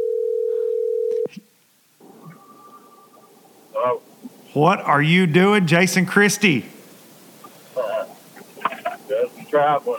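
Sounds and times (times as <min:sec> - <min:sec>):
telephone dial tone: 0:00.0 - 0:01.3
faint ringing-line hiss: 0:01.2 - 0:09.9
speech: 0:03.8 - 0:06.8, 0:09.6 - 0:09.9.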